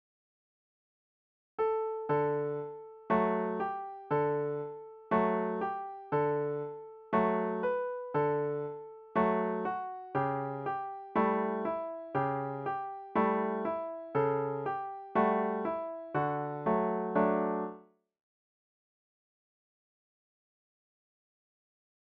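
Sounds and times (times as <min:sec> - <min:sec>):
piano piece: 0:01.6 - 0:17.8.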